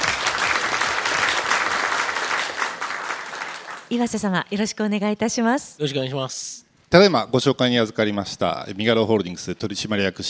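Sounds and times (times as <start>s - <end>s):
audience applause welcoming a speaker: 0.0s - 3.9s
speech: 3.9s - 10.2s.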